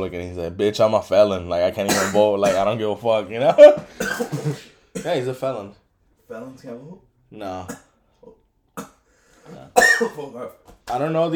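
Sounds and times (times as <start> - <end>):
speech: 0.0 - 7.9, 9.5 - 11.3
harsh coughs: 1.9 - 2.8, 3.5 - 5.2, 7.7 - 10.3.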